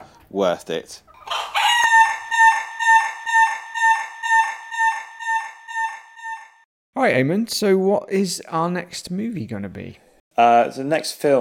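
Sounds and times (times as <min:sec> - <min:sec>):
speech: 0:00.3 - 0:01.1, 0:07.0 - 0:11.4
chicken clucking: 0:01.2 - 0:06.6.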